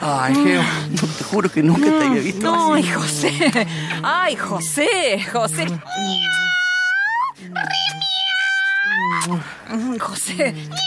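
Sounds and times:
speech: 0.0s - 6.6s, 7.4s - 8.2s, 8.9s - 10.8s
female cat meowing loudly: 5.7s - 9.3s, 10.7s - 10.8s.

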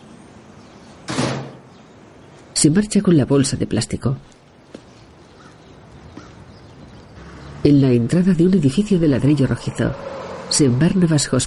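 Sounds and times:
lid shutting on a rubbish bin: 1.1s - 1.7s
speech: 2.6s - 4.4s, 7.6s - 11.4s.

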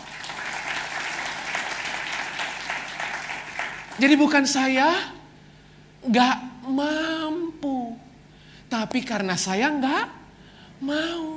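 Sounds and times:
audience applause: 0.0s - 4.2s
speech: 4.0s - 5.2s, 6.0s - 7.4s, 8.8s - 10.2s, 10.8s - 11.3s.

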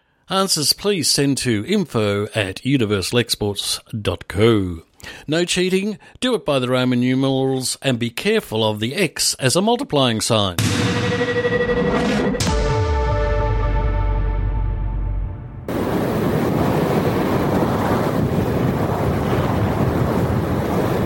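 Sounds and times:
speech: 0.3s - 12.0s
tonal hum: 10.6s - 15.9s
wind-like whooshing sound effect representing clouds: 15.7s - 21.0s.

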